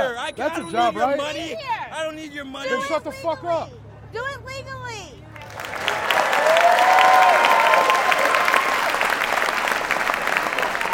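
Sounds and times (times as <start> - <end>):
speech: 0.0 - 4.7
large crowd of thousands clapping: 5.4 - 10.9.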